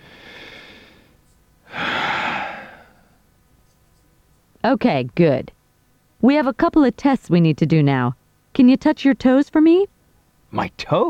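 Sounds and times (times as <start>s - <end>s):
deep breath in and out during a medical checkup with a stethoscope: 0.0s - 3.2s
speech: 4.6s - 5.5s, 6.2s - 9.9s, 10.5s - 11.0s.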